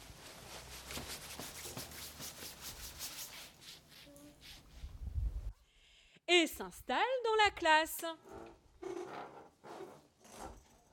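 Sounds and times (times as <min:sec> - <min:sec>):
coat fabric rustling as children pull off their jackets at school: 0:00.0 - 0:04.9
speech: 0:06.6 - 0:08.4.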